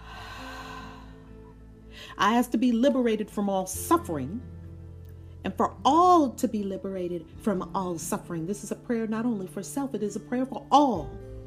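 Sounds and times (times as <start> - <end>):
long deep breath drawn in: 0.0 - 2.2
speech: 2.1 - 4.5, 5.4 - 11.2.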